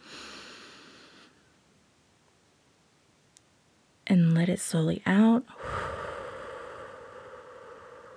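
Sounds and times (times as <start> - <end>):
deep breath in: 0.0 - 1.4, 5.6 - 8.1
speech: 4.1 - 5.9.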